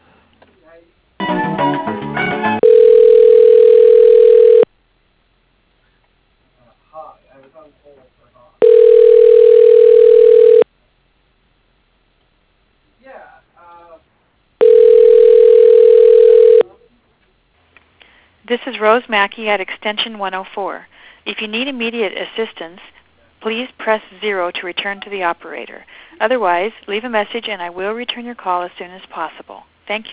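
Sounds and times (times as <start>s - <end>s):
speech: 0.7s - 2.1s, 18.8s - 30.1s
telephone ringback tone while a call is transferred: 2.6s - 4.7s, 8.6s - 10.6s, 14.6s - 16.6s.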